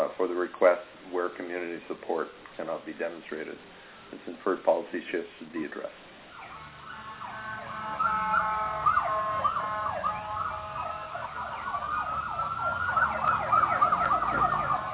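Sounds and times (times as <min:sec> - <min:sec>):
speech: 0:00.0 - 0:06.1
emergency vehicle sirens wailing: 0:06.2 - 0:14.9.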